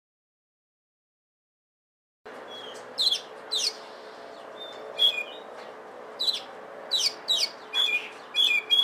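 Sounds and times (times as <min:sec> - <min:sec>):
steady low hum: 0:02.3 - 0:08.8
Oriental magpie-robin whistling and chirping: 0:02.5 - 0:03.8, 0:04.6 - 0:05.4, 0:06.2 - 0:08.8.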